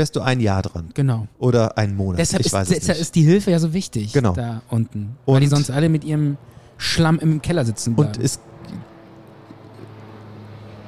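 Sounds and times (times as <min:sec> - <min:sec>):
speech: 0:00.0 - 0:08.8
helicopter flying overhead: 0:02.2 - 0:10.8.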